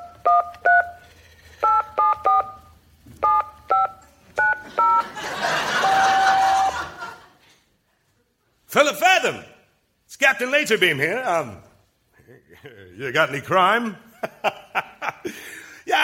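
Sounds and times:
crisp touch-tone beeps of phone number dialing: 0.0s - 1.0s, 1.6s - 5.0s
phone line hiss: 0.0s - 2.6s
laughter: 4.6s - 7.6s, 12.2s - 13.0s, 14.1s - 16.0s
speech: 9.2s - 9.5s, 10.3s - 11.7s, 12.3s - 14.1s.

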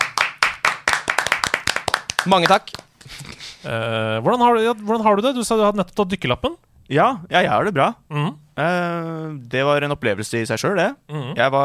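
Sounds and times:
a few people clapping: 0.0s - 2.9s
speech: 2.2s - 11.6s.

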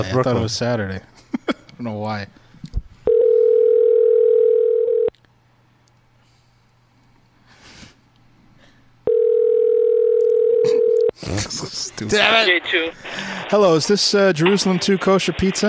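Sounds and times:
speech: 0.0s - 1.1s, 1.8s - 2.8s, 11.3s - 15.6s
telephone dial tone while calling a kosher pizza shop: 3.1s - 5.1s, 9.1s - 11.1s.

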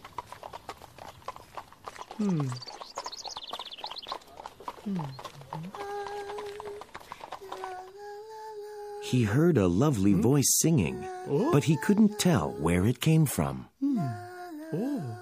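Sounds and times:
horse hooves clip-clopping: 0.0s - 8.3s
speech: 2.2s - 2.7s, 4.8s - 5.9s, 9.1s - 14.8s.

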